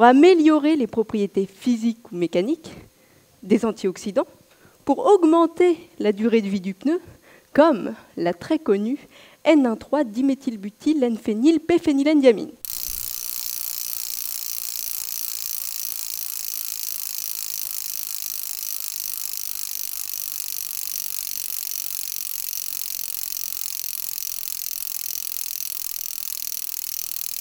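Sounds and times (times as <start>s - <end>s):
speech: 0.0s - 12.6s
car jack ratcheting at a lifting point near a tyre: 12.6s - 27.4s.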